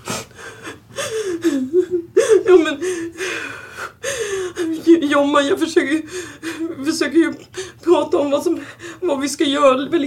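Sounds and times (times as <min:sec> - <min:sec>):
person taking heavy deep breaths with whimpering tone: 0:00.0 - 0:04.7, 0:06.1 - 0:06.6
speech: 0:05.2 - 0:10.0.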